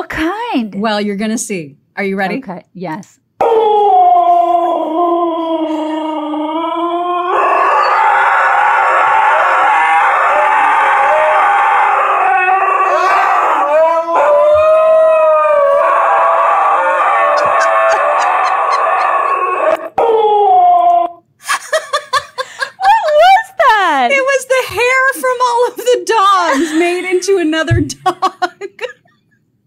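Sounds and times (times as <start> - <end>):
speech: 0.0 - 3.8
husky howling and yodelling with yips and grumbles: 3.4 - 21.2
laughter: 16.8 - 19.8, 21.4 - 24.3, 24.9 - 29.3.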